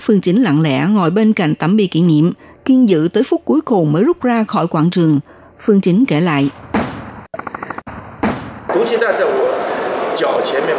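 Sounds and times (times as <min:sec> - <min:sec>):
speech: 0:00.1 - 0:06.7, 0:08.7 - 0:10.7
loud booming gunshots: 0:06.7 - 0:10.1
rapid evenly spaced automatic gunfire: 0:06.8 - 0:08.6.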